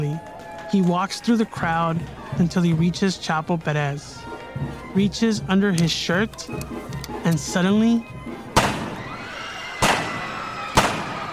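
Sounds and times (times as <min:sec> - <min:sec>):
speech: 0:00.2 - 0:08.2
gunshots fired point blank at a party: 0:08.5 - 0:09.1, 0:09.8 - 0:11.3.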